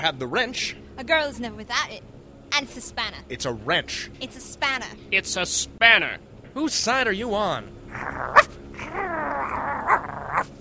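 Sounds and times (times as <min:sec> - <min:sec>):
speech: 0:00.0 - 0:10.5
dog growling and whining: 0:07.9 - 0:10.5.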